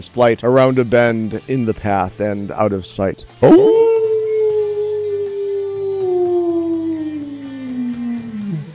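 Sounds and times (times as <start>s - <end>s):
speech: 0.0s - 3.9s
low droning: 3.4s - 8.7s
wolf howling: 3.4s - 8.7s.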